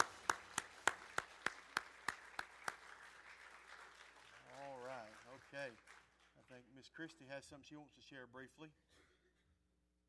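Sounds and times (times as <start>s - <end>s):
audience applause for graduates: 0.0s - 7.2s
speech: 6.6s - 9.0s.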